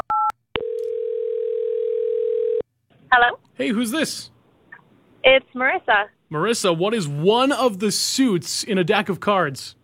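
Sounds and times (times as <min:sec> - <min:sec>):
steady continuous telephone tone: 0:00.1 - 0:02.6
speech: 0:03.1 - 0:04.3, 0:05.3 - 0:09.8.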